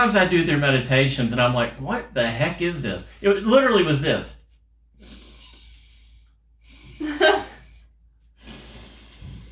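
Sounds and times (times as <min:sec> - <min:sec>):
speech: 0:00.0 - 0:04.4
nasal breaths during alternate nostril breathing: 0:04.9 - 0:09.5.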